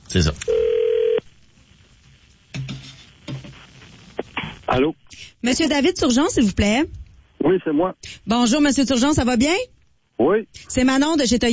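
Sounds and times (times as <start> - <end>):
speech: 0.1 - 0.7, 4.8 - 11.5
landline telephone dial tone: 0.5 - 1.2.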